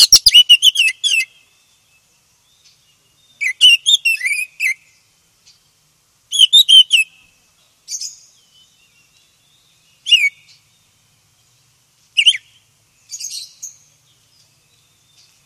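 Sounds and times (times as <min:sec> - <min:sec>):
oriental magpie-robin whistling and chirping: 0:00.0 - 0:01.5, 0:02.6 - 0:04.9, 0:06.3 - 0:07.2, 0:07.9 - 0:10.6, 0:12.2 - 0:13.9.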